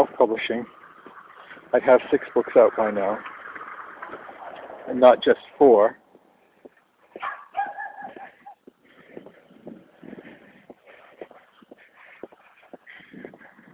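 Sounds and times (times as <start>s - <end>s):
speech: 0.0s - 0.8s, 1.7s - 3.3s, 4.1s - 6.0s
shuffling outdoor noise: 0.0s - 13.7s
dogs barking: 7.1s - 8.7s.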